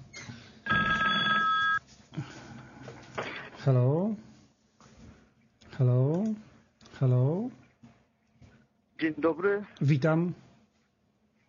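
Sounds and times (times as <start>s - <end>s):
telephone ringing with electronic trill: 0.7s - 1.8s
speech: 3.6s - 4.3s, 5.8s - 7.6s, 9.0s - 10.4s.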